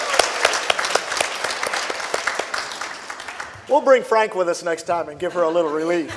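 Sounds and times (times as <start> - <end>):
audience clapping: 0.0 - 4.2
speech: 3.7 - 6.1.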